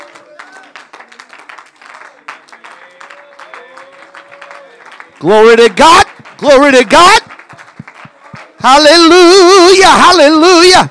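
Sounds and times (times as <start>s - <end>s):
large group clapping enthusiastically: 0.0s - 10.9s
speech: 5.2s - 7.3s, 8.6s - 10.9s.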